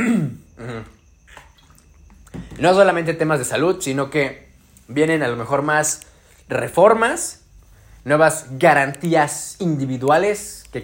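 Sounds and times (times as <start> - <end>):
short throaty vocal noise: 0.0 - 1.0
speech: 2.6 - 7.4, 8.0 - 10.8.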